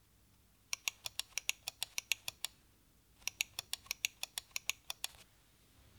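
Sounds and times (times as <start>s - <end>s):
controller shoulder buttons: 0.8s - 2.5s, 3.2s - 5.2s.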